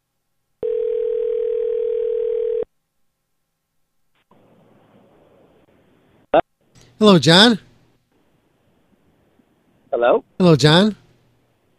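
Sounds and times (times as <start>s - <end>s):
telephone ringback tone on outgoing call: 0.6s - 2.7s
faint hiss of telephone line noise: 2.8s - 10.0s
speech: 7.0s - 7.6s, 10.4s - 11.0s.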